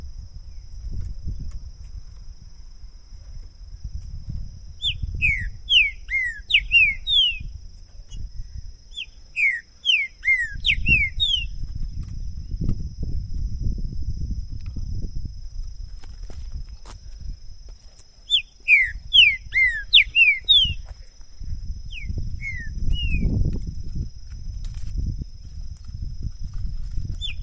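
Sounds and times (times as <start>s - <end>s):
low rumbling wind or handling noise: 0.0s - 27.4s
thin steady hum: 0.0s - 27.4s
green-winged saltator song of rich downslurred whistles: 4.7s - 12.6s, 18.2s - 21.0s, 21.8s - 23.5s, 27.1s - 27.4s.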